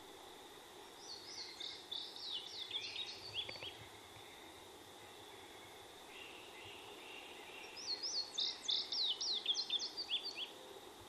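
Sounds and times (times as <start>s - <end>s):
Indigo bunting singing: 1.0s - 3.8s, 5.6s - 10.5s.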